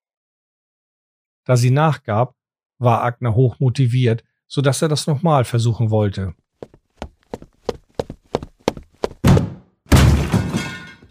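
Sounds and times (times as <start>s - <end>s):
speech: 1.5s - 7.4s
repeated heavy thumps: 6.6s - 9.6s.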